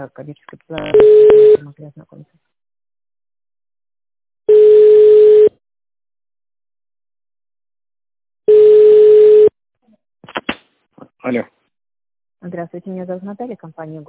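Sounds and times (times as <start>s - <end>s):
speech: 0.0s - 2.5s, 11.2s - 11.6s, 12.4s - 14.0s
telephone ringing tone while calling a business contact: 0.8s - 1.6s, 4.5s - 5.6s, 8.5s - 9.5s.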